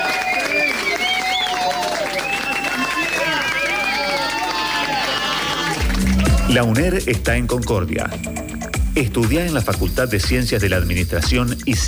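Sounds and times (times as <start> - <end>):
crowd applauding: 0.0 - 7.0
speech: 6.5 - 8.4, 9.0 - 11.8.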